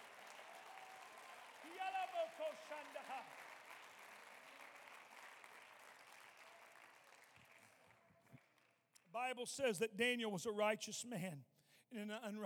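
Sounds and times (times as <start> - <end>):
excited voices shouting and cheering: 0.0 - 3.3
large audience applause: 0.0 - 8.7
speech: 1.7 - 3.5, 9.2 - 12.4.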